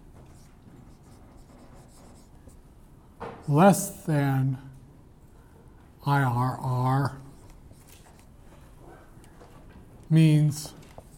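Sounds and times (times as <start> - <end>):
chalk or marker writing scratching on a board: 0.2 - 2.6
speech: 3.5 - 4.7, 6.1 - 7.2, 10.1 - 10.8.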